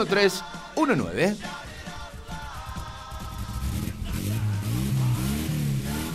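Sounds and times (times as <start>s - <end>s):
speech: 0.0s - 1.6s
car engine starting and revving: 3.2s - 6.1s.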